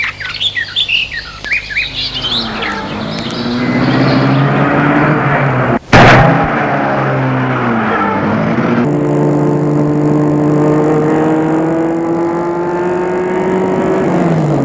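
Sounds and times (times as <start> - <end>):
birds chirping: 0.0 - 5.8
car engine starting and revving on a road: 1.7 - 14.6.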